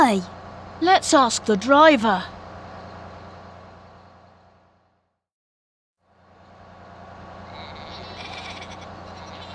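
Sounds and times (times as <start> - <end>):
speech: 0.0 - 2.4
crowd of sheep bleating on the road: 7.5 - 9.5.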